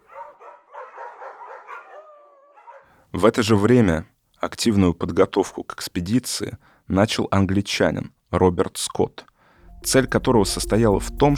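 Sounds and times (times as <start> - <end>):
pack of laika sled dogs barking and yelping: 0.0 - 3.0
speech: 3.1 - 11.3.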